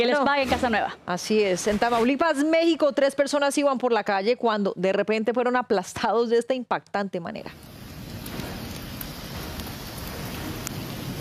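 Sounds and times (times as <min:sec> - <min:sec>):
speech: 0:00.0 - 0:07.8
heavy rain pouring down: 0:07.5 - 0:11.1
sharper rain drips and splashes: 0:07.5 - 0:11.1.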